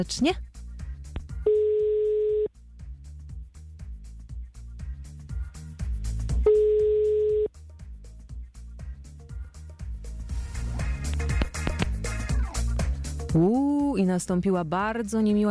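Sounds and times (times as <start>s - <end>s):
speech: 0.0s - 0.5s, 13.4s - 15.4s
rhythmic music: 0.0s - 15.4s
ringback tones on a phone line: 1.5s - 2.5s, 6.5s - 7.5s.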